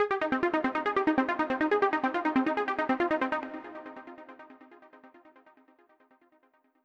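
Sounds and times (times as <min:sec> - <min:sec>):
arpeggiated trance music: 0:00.0 - 0:05.0.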